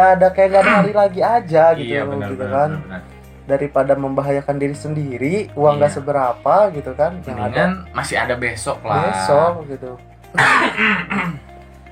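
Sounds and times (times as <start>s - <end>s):
speech: 0.0s - 11.5s
quick rough throaty coughs: 10.3s - 11.5s.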